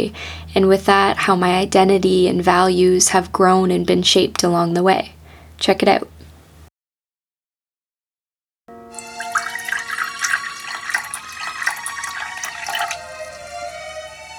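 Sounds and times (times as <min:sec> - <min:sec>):
speech: 0:00.0 - 0:06.1
coffee pouring into a cup beside a Christmas tree in a student home living room: 0:09.0 - 0:14.0.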